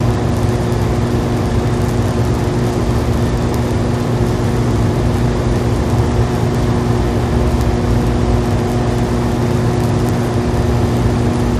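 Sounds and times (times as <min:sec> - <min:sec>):
power plant transformer buzzing and humming: 0:00.0 - 0:11.5.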